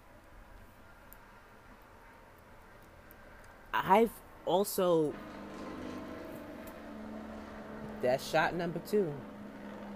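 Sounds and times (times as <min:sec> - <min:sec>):
speech: 0:03.8 - 0:05.3, 0:08.0 - 0:09.3
motorcycle engine droning outside on a rainy day in New York: 0:05.1 - 0:09.9.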